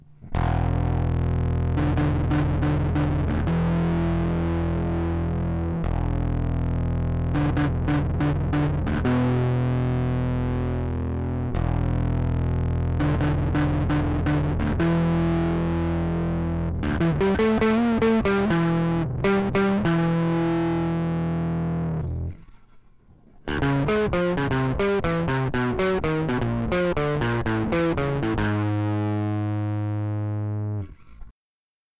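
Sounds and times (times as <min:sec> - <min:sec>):
overdrive effect with 1N60 and 1N4002 diodes: 0:00.0 - 0:31.3.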